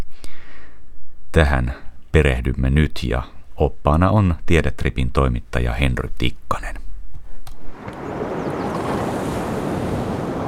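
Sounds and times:
speech: 0:01.3 - 0:06.8
light wind across the microphone: 0:07.4 - 0:10.4
gentle sea waves washing against the shore at a tropical atoll: 0:07.7 - 0:10.4.

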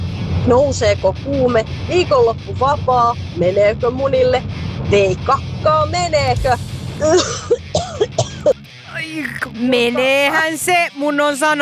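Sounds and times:
speech: 0:00.5 - 0:11.6
person coughing: 0:07.0 - 0:08.6
person clearing throat roughly: 0:07.0 - 0:09.4.

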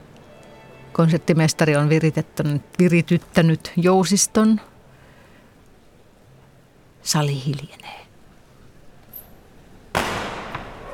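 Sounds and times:
speech: 0:01.0 - 0:04.7, 0:07.0 - 0:08.0
firecrackers popping in a concert hall: 0:09.9 - 0:10.9.

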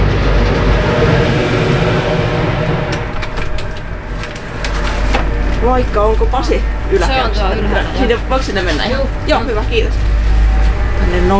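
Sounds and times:
car ferry engine rumble pulling away from the dock: 0:00.0 - 0:11.3
speech: 0:05.8 - 0:10.1, 0:11.1 - 0:11.3.

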